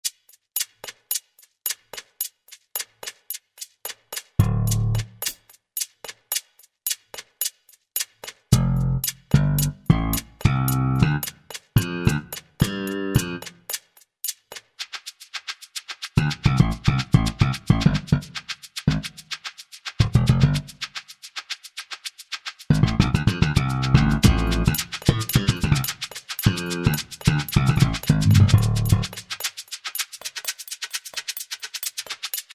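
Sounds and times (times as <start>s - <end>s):
low C groove: 4.4s - 5.4s, 8.5s - 13.6s, 16.2s - 19.2s, 20.0s - 20.8s, 22.7s - 25.9s, 26.5s - 29.2s.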